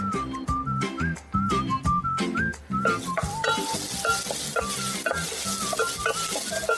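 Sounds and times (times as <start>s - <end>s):
light whistled tune with bass: 0.0s - 6.7s
garlic sizzling in olive oil in a pan for a soup: 2.7s - 6.7s.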